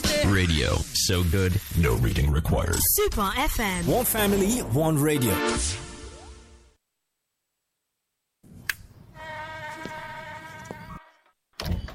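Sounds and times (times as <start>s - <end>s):
speech: 0.3s - 5.9s
high-pitched mosquito whine: 9.2s - 11.3s.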